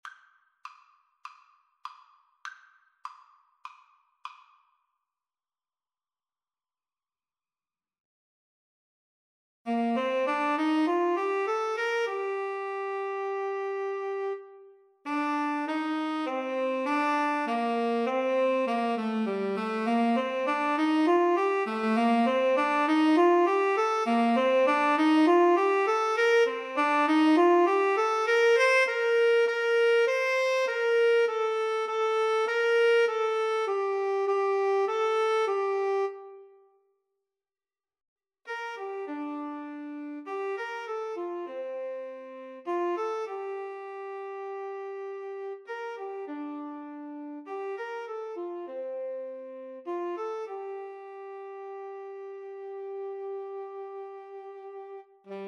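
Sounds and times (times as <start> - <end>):
tenor saxophone duet: 9.7 - 36.7, 38.5 - 55.4.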